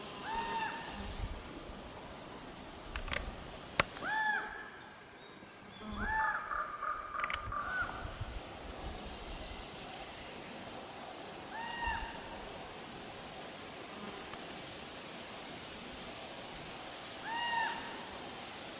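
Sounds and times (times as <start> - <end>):
background hiss: 0.0 - 18.7
common raven calls: 0.2 - 1.1, 4.0 - 4.7, 6.0 - 8.2, 11.5 - 12.4, 17.2 - 18.1.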